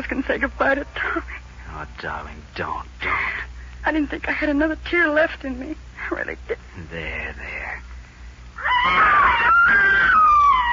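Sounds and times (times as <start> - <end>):
speech: 0.1 - 7.8, 8.8 - 10.3
child's high-pitched scream: 8.6 - 10.7.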